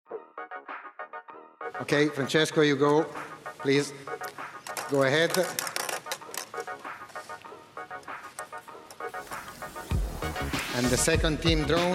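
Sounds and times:
tonal music: 0:00.1 - 0:11.8
speech: 0:01.7 - 0:05.7, 0:10.8 - 0:11.9
hand rummaging through a pile of plastic draw balls: 0:04.6 - 0:06.8.

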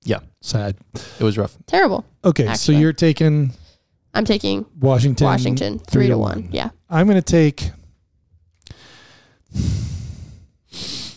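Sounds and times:
speech: 0:00.0 - 0:07.8, 0:09.5 - 0:09.9
heavy airy breathing into a microphone: 0:08.7 - 0:11.1.

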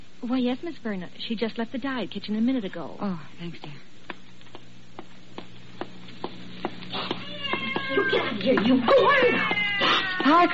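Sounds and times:
steady room hum: 0:00.0 - 0:10.5
speech: 0:00.2 - 0:03.9, 0:08.1 - 0:10.5
faint regular tapping: 0:03.6 - 0:08.7
cat meowing: 0:07.2 - 0:10.5.

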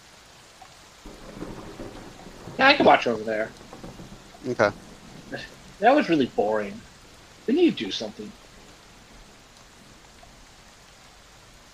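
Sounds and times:
rain falling outside: 0:00.0 - 0:11.7
speech: 0:02.6 - 0:03.6, 0:04.4 - 0:06.9, 0:07.5 - 0:08.4.

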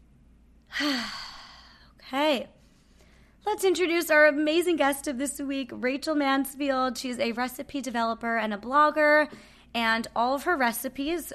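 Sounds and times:
deep breath in and out: 0:00.7 - 0:01.9
speech: 0:02.3 - 0:02.6, 0:03.4 - 0:11.3.

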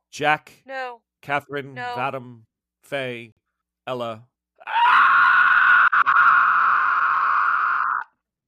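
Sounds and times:
speech: 0:00.1 - 0:04.8
pterodactyl screaming after being hit by a fired flare: 0:04.6 - 0:08.2.

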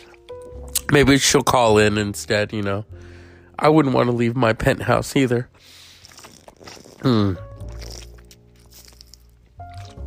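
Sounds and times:
speech: 0:00.9 - 0:05.8, 0:06.6 - 0:07.5
person drinking water with swallowing and gulping: 0:05.7 - 0:10.0.

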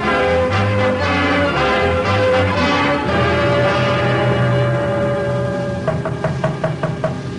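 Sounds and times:
sustained dramatic orchestral music: 0:00.0 - 0:06.9
sharp knocks on a wooden door: 0:05.9 - 0:07.2.

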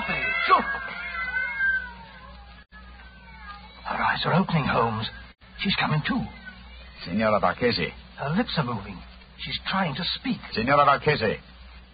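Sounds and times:
cats meowing and caterwauling: 0:00.0 - 0:05.4, 0:06.3 - 0:07.0
speech: 0:04.2 - 0:06.4, 0:07.0 - 0:11.5.

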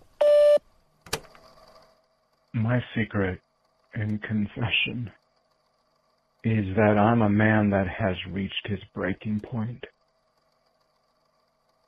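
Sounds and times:
faint noise: 0:00.0 - 0:11.8
voicemail beep: 0:00.2 - 0:00.6
speech: 0:02.6 - 0:05.2, 0:06.4 - 0:09.9.

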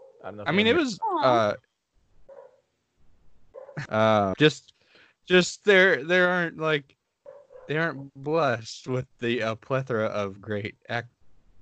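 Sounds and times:
dog barking: 0:00.0 - 0:00.3, 0:02.3 - 0:02.6, 0:03.5 - 0:03.9, 0:07.2 - 0:07.8
speech: 0:00.2 - 0:01.7, 0:03.8 - 0:04.7, 0:05.3 - 0:07.0, 0:07.7 - 0:11.2.

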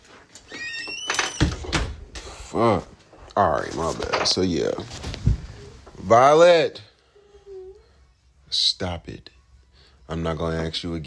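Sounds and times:
door creaking on its hinges with a rising squeal: 0:00.3 - 0:02.4
speech: 0:02.6 - 0:05.1, 0:06.0 - 0:06.9, 0:08.5 - 0:09.3, 0:10.1 - 0:11.0.

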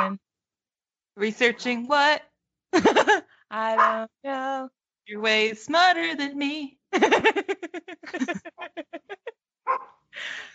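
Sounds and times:
speech: 0:00.0 - 0:00.3, 0:01.2 - 0:10.5
laughter: 0:02.8 - 0:03.2, 0:07.0 - 0:09.3
dog barking: 0:03.8 - 0:04.0, 0:09.7 - 0:10.0.

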